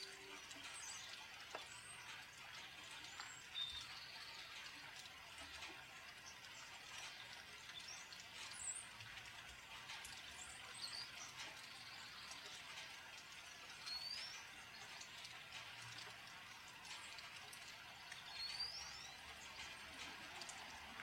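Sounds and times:
steady rain falling: 0:00.0 - 0:21.0.

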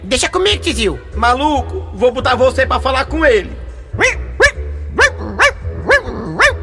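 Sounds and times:
speech: 0:00.1 - 0:04.2
dog barking: 0:04.0 - 0:06.6.

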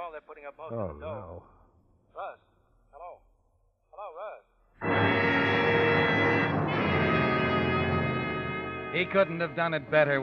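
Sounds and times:
speech: 0:00.1 - 0:01.6, 0:02.2 - 0:03.2, 0:08.9 - 0:10.2
loud buzzing drone with harmonics: 0:04.8 - 0:09.0.

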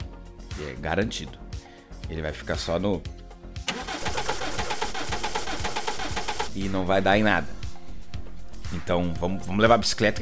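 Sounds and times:
speech: 0:00.6 - 0:01.4, 0:02.1 - 0:03.2, 0:06.6 - 0:07.6, 0:08.7 - 0:10.1
voice imitating car engine cranking without catching: 0:03.7 - 0:09.1.

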